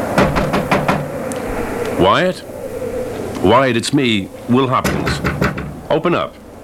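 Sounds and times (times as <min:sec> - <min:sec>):
firm knocks on a wooden cabin door: 0:00.2 - 0:01.1, 0:04.9 - 0:05.8
speech: 0:02.0 - 0:02.5, 0:03.4 - 0:05.3, 0:05.9 - 0:06.4.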